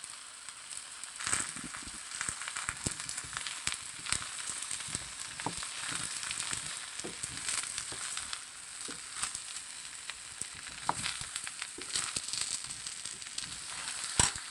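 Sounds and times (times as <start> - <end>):
stuffed eggplants and potato slices frying in a pan with browned onion: 0.0 - 14.4.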